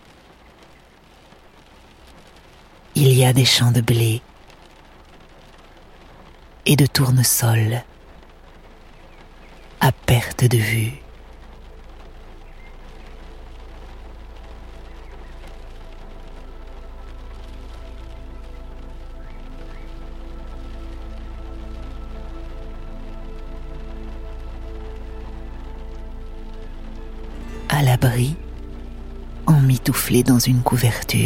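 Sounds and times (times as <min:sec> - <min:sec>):
gentle rain pattering: 0:00.0 - 0:31.2
speech: 0:03.0 - 0:04.3, 0:06.6 - 0:07.9, 0:10.2 - 0:11.0, 0:28.0 - 0:28.4, 0:29.8 - 0:31.2
low rumble: 0:09.9 - 0:31.2.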